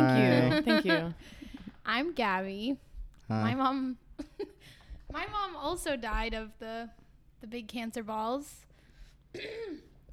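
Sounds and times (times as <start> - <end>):
speech: 0.5 - 4.5, 5.1 - 8.7, 9.3 - 9.9
person clearing throat: 9.4 - 10.1.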